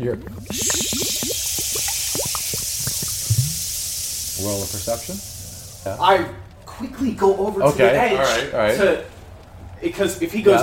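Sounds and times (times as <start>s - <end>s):
speech: 0.0s - 1.3s, 4.4s - 9.1s, 9.8s - 10.6s
water from a water skin glugging and splashing down a smoking chimney on a flat roof: 0.0s - 5.9s.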